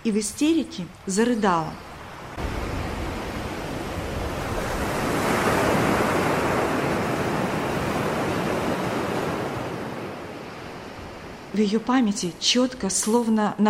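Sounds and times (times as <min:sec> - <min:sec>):
speech: 0:00.0 - 0:01.9, 0:11.6 - 0:13.6
roaring tsunami waves crashing: 0:02.0 - 0:11.6.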